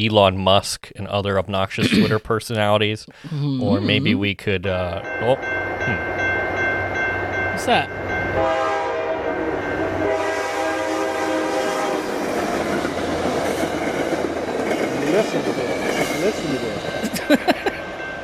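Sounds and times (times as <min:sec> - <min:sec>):
speech: 0:00.0 - 0:06.0, 0:07.6 - 0:08.6, 0:15.1 - 0:17.5
laughter: 0:01.8 - 0:02.2, 0:03.6 - 0:04.3, 0:17.0 - 0:17.8
train rumbling past: 0:05.0 - 0:18.2
train horn blaring: 0:08.3 - 0:12.4.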